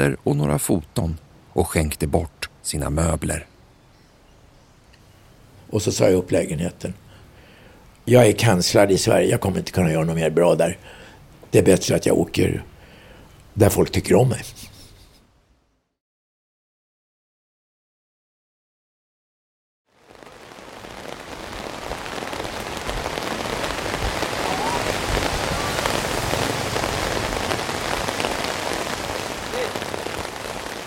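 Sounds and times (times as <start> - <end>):
speech: 0.0 - 3.5, 5.7 - 7.0, 8.0 - 12.7, 13.6 - 14.7
heavy rain striking surfaces: 19.9 - 30.8.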